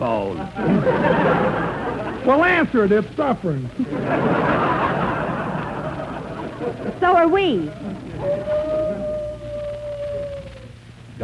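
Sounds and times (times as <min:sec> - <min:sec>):
speech: 0:00.0 - 0:04.6, 0:06.6 - 0:09.1
low rumble: 0:00.0 - 0:11.2
laughter: 0:00.2 - 0:03.0, 0:03.6 - 0:10.4
drawn-out wolf-like howl: 0:07.8 - 0:10.8.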